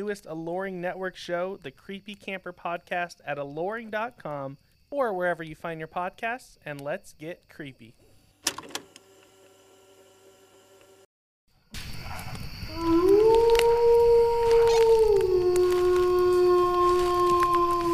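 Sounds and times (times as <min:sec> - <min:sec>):
speech: 0:00.0 - 0:08.6
wolf howl sound effect played from a soundboard: 0:12.6 - 0:17.9.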